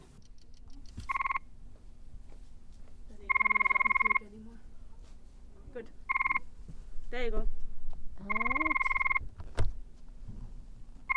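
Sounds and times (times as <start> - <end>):
faint low hum: 0.0 - 11.1
soft murmur: 0.1 - 9.0
recorded male frog mating calls played back in an empty arena: 3.3 - 4.2, 6.1 - 6.4, 8.2 - 9.2
speech: 7.2 - 7.6.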